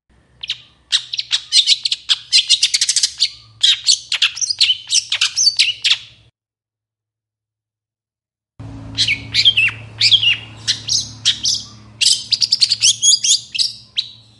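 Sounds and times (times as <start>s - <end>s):
Long-tailed Shrike in full varied song in the morning: 0.4s - 6.2s, 8.9s - 14.3s
faint hum: 8.6s - 14.3s.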